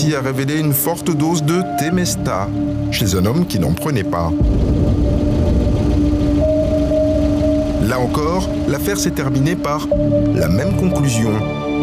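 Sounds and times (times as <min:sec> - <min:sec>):
speech: 0:00.0 - 0:05.0, 0:07.9 - 0:11.8
car engine idling: 0:04.4 - 0:10.3.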